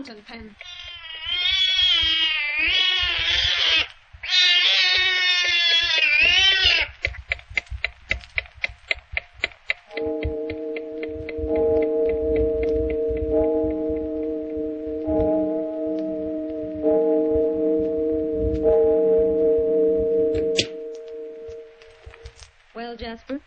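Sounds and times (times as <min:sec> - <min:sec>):
speech: 0:00.0 - 0:00.8
one-eyed cat meowing: 0:00.6 - 0:07.0
clock ticking: 0:06.6 - 0:22.3
sustained droning tone: 0:09.9 - 0:22.5.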